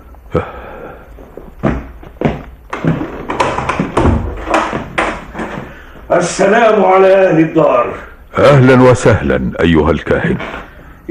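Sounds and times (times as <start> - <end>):
speech: 0.3 - 0.6, 6.1 - 11.0
house door being opened, wooden thumps, knocks and taps: 1.4 - 5.8.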